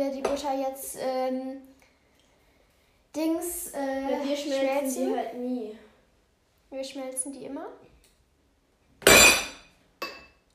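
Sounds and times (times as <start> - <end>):
speech: 0.0 - 1.8, 3.1 - 5.8, 6.7 - 7.9
ceramic plate crashing and breaking: 9.0 - 10.2.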